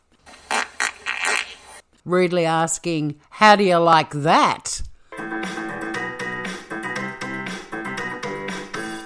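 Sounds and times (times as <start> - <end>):
raspy fart sound effect: 0.3 - 1.8
speech: 2.0 - 4.9.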